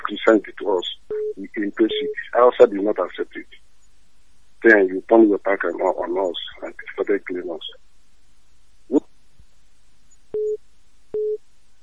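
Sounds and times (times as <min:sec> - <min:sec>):
speech: 0:00.1 - 0:03.6, 0:04.6 - 0:07.8, 0:08.9 - 0:09.1
phone line tone after a caller hangs up: 0:10.4 - 0:10.6, 0:11.2 - 0:11.4.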